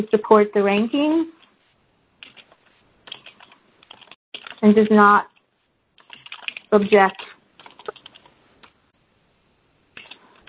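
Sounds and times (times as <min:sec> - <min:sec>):
speech: 0:00.0 - 0:01.4, 0:04.6 - 0:05.3, 0:06.7 - 0:07.3
typing on a computer keyboard: 0:02.2 - 0:05.4, 0:06.0 - 0:08.8, 0:10.0 - 0:10.4.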